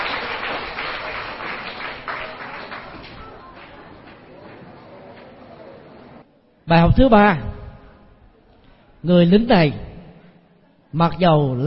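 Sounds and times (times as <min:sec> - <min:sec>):
crowd of children clapping together: 0:00.0 - 0:04.7
speech: 0:06.7 - 0:07.5, 0:09.0 - 0:09.8, 0:10.9 - 0:11.6.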